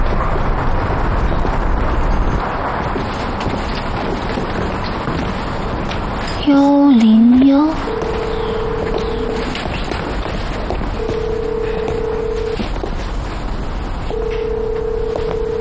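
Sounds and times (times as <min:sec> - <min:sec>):
low rumbling: 0:00.0 - 0:15.6
speech: 0:06.5 - 0:07.9
telephone call failing tone: 0:07.3 - 0:09.6, 0:11.0 - 0:12.8, 0:14.1 - 0:15.6.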